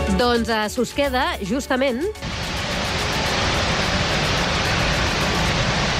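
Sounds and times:
speech: 0.2s - 2.4s
water gushing from a dam floodgate: 2.2s - 5.9s.

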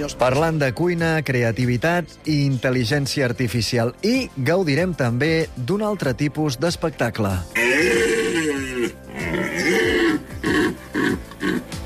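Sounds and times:
speech: 0.0s - 8.1s
rutting deer stags bellowing: 7.6s - 11.8s.

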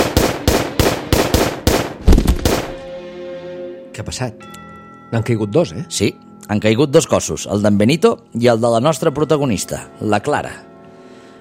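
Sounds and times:
pistol shots emptying a magazine during an execution: 0.0s - 2.9s
speech: 4.0s - 10.7s.

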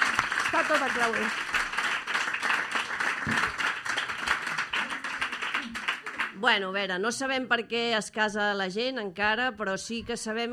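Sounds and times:
crowd applauding: 0.0s - 6.4s
speech: 0.6s - 1.5s, 6.4s - 10.5s.

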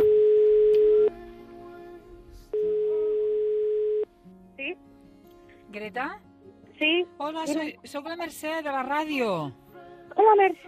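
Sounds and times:
electronic telephone ringback tone: 0.0s - 1.1s, 2.6s - 4.1s
speech: 5.9s - 9.6s, 10.2s - 10.6s.

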